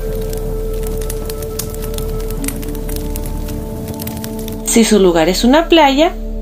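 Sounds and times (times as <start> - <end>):
fireplace fire crackling in a cabin: 0.0 - 5.8
low rumble: 0.0 - 6.3
speech: 4.7 - 6.2.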